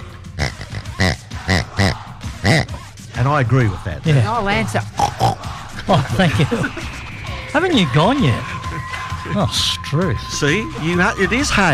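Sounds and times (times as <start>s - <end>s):
person imitating pig oinks and snorts: 0.4s - 2.8s, 4.9s - 5.4s
laughter: 0.6s - 2.7s, 4.0s - 11.7s
speech: 2.5s - 4.9s, 5.9s - 6.9s, 7.6s - 8.5s, 9.3s - 11.7s.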